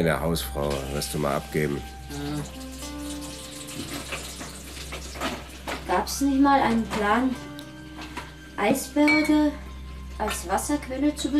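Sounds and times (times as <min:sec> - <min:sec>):
speech: 0:00.0 - 0:02.7, 0:05.9 - 0:07.5, 0:08.6 - 0:09.6, 0:10.2 - 0:11.3
ice cubes clinking: 0:00.6 - 0:06.0.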